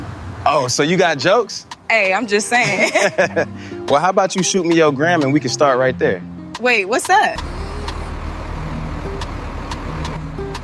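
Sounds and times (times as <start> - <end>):
bus pulling up with heavy engine rumble: 0.0 - 10.6
speech: 0.4 - 7.6
laughter: 2.5 - 3.6.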